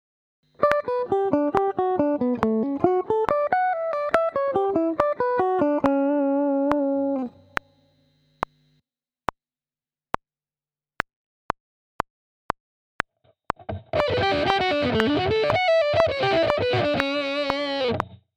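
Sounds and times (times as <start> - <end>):
guitar sweep picking: 0.6 - 7.6, 13.6 - 18.2.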